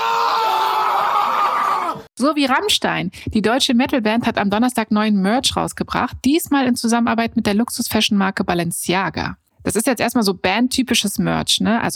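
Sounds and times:
loud sustained human scream into a computer microphone: 0.0 - 2.1
speech: 2.2 - 11.9.

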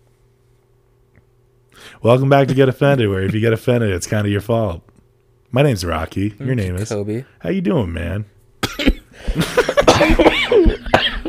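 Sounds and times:
speech: 2.0 - 4.9, 5.5 - 10.8
person coughing: 2.4 - 3.5, 8.6 - 11.2
breathy laughter-like sounds: 8.8 - 11.2.

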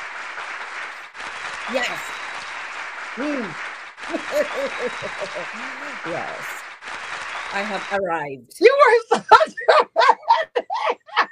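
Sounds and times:
dense continuous hand clapping: 0.0 - 8.0
speech: 1.7 - 2.2, 3.2 - 6.6, 7.5 - 9.9
laughter: 3.2 - 6.6, 9.0 - 11.2
voices calling out in rising and falling whoops: 3.2 - 6.6.

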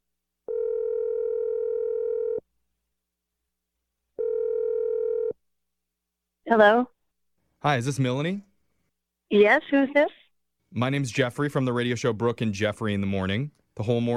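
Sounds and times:
telephone dial tone: 0.5 - 2.4, 4.2 - 5.4
speech: 6.5 - 6.9, 7.6 - 8.5, 9.3 - 14.1.

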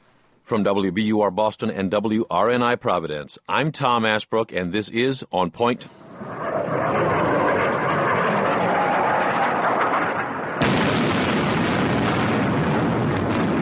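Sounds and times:
speech: 0.5 - 6.0
bombing explosions during an air raid: 6.0 - 13.6.

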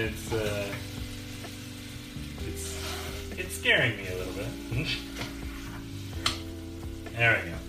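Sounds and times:
speech: 0.0 - 0.8, 3.5 - 5.3, 7.2 - 7.6
food frying and sizzling in a pan while grits are cooked: 0.0 - 7.6.

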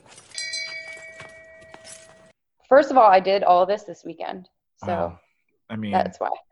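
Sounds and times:
faint knocks and shuffling: 0.0 - 2.3
single bell strike with sustained metallic tone: 0.0 - 2.3
speech: 2.7 - 6.4.

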